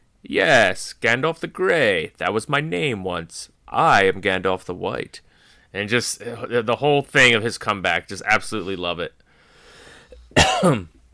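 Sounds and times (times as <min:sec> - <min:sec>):
speech: 0:00.2 - 0:09.2, 0:10.3 - 0:10.9
harsh partly voiced cough: 0:10.3 - 0:11.0.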